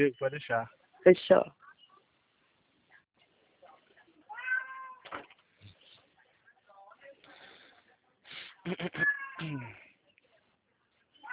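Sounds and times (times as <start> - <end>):
speech: 0.0 - 1.6, 8.6 - 9.8
cat meowing loudly to go outside: 4.3 - 5.0, 9.0 - 9.7.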